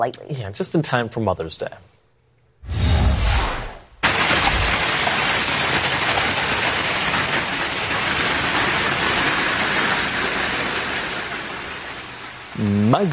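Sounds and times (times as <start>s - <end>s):
speech: 0.0s - 2.0s, 12.6s - 13.1s
gusty wind whoosh: 2.6s - 4.7s
hail and heavy rain from strong storms outside Baton Rouge Louisiana: 4.0s - 13.1s.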